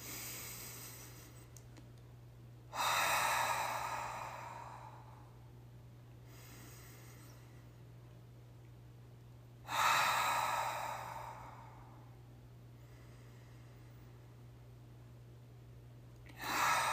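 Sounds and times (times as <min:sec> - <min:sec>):
slow deep breathing in through the nose and out through the mouth: 0:00.0 - 0:01.6, 0:02.7 - 0:05.4, 0:06.2 - 0:07.8, 0:09.6 - 0:14.3, 0:16.3 - 0:16.9
steady low hum: 0:00.0 - 0:16.9.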